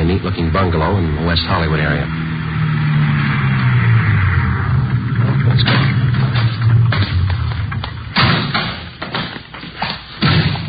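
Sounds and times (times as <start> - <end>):
car engine humming inside a moving vehicle: 0.0 - 10.6
faint road rumble: 0.0 - 10.6
speech: 0.2 - 2.2, 5.6 - 6.0.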